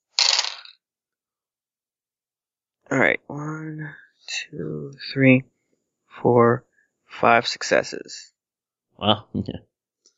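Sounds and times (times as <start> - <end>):
handful of dice rolled onto a surface: 0.1 - 0.8
speech: 2.9 - 5.5, 6.2 - 8.3, 9.0 - 9.7.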